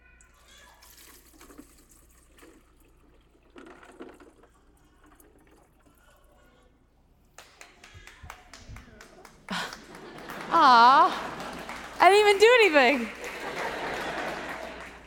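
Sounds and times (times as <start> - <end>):
water pouring into a container holding rocks and popsicle sticks: 0.2 - 6.7
laughter: 8.1 - 15.0
speech: 10.5 - 11.2, 12.1 - 13.2.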